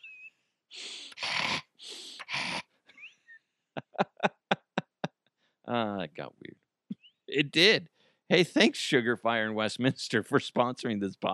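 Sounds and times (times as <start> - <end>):
heavy breathing: 0.8 - 2.6
sharp rhythmic gasps like panting: 0.8 - 3.4, 7.9 - 8.3
laughter: 3.8 - 5.1, 5.7 - 6.1, 7.4 - 7.8, 8.4 - 11.3
speech: 5.7 - 6.5, 7.4 - 11.3.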